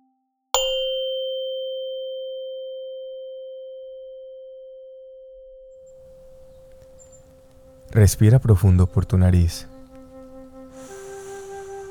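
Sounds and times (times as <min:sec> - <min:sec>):
meditation bell struck to begin a meditation session: 0:00.6 - 0:08.0
speech: 0:07.9 - 0:09.7.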